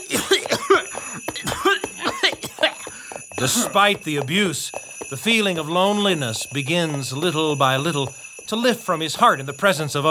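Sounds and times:
ragged breathing: 0.0 - 3.9, 4.7 - 5.2, 8.1 - 8.5
harsh raspy coughing fit: 0.0 - 4.0
speech: 3.4 - 10.0.

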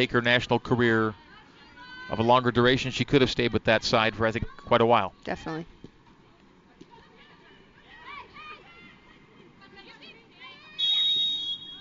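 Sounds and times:
speech: 0.0 - 1.2, 2.1 - 5.8
referee's whistle blast for a foul at a soccer match: 10.8 - 11.8.

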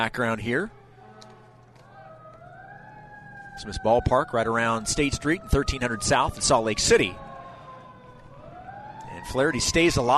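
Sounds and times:
speech: 0.0 - 0.8, 3.6 - 7.2, 9.2 - 10.1
low background hum of a crowded ballpark during a baseball game: 0.0 - 10.1
faint fire truck sirens wailing: 0.8 - 10.1.

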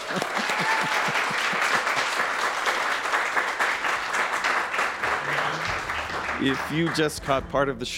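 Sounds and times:
laughter: 0.0 - 2.0
large live audience applauding: 0.0 - 7.8
speech: 0.1 - 0.5, 6.4 - 7.9.

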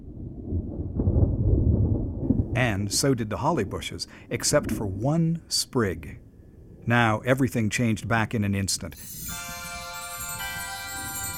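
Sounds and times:
thunder rumbling: 0.0 - 5.0
speech: 2.6 - 6.2, 6.8 - 9.6.

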